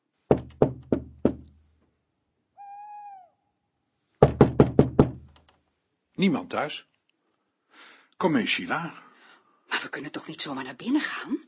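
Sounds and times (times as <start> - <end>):
firm knocking on a wooden door: 0.3 - 1.5, 4.2 - 5.4
owl hooting: 2.6 - 3.4
speech: 6.2 - 6.9, 7.8 - 9.0, 9.8 - 11.4.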